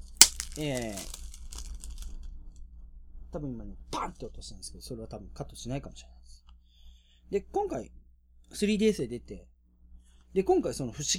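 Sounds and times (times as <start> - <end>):
plastic packaging of a video game package rustling while torn open: 0.0 - 2.1
speech: 0.6 - 1.2, 3.3 - 6.2, 7.3 - 9.5, 10.3 - 11.1.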